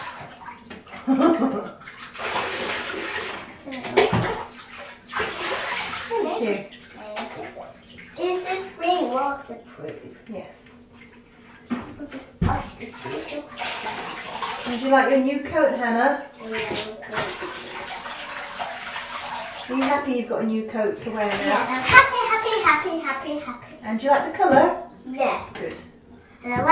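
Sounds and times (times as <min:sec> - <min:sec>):
water splashing and sloshing in a bath with little water: 0:00.0 - 0:26.6
speech: 0:01.1 - 0:01.8, 0:14.9 - 0:16.8, 0:19.8 - 0:25.8, 0:26.4 - 0:26.6.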